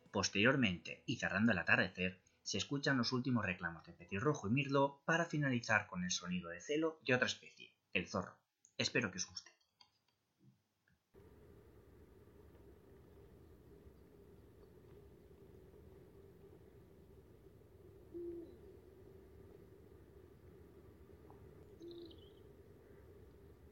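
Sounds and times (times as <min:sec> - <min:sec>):
speech: 0:00.1 - 0:09.6
low rumbling background: 0:11.2 - 0:23.7
Eurasian eagle-owl breeding-season hooting at night in front of a rocky cliff: 0:16.1 - 0:23.7.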